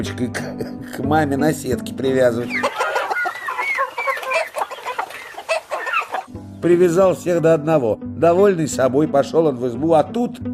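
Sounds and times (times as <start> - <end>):
speech: 0.0 - 2.8, 6.6 - 10.5
chickens clucking and peeping: 2.4 - 6.4.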